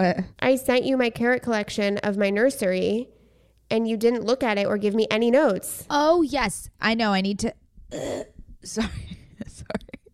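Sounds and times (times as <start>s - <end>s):
speech: 0.0s - 9.8s
person clearing throat: 7.9s - 8.4s.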